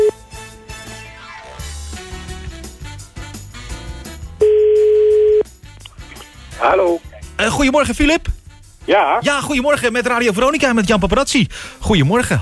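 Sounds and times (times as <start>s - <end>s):
music: 0.0s - 12.3s
telephone ringing tone of an outgoing call: 4.4s - 5.4s
speech: 6.6s - 8.3s, 8.9s - 12.3s.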